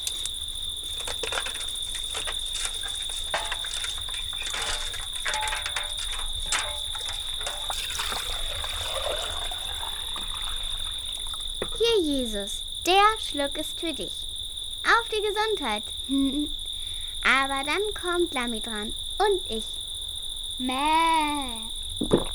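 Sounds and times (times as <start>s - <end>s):
water splashing and trickling while being drawn up from a well: 0.0s - 11.8s
speech: 12.0s - 14.2s, 15.1s - 16.6s, 17.2s - 19.7s, 20.6s - 22.3s.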